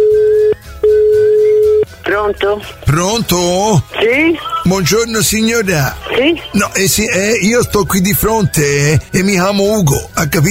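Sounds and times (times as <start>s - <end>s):
telephone line tone while placing a call: 0.0s - 1.9s
speech: 2.3s - 10.4s.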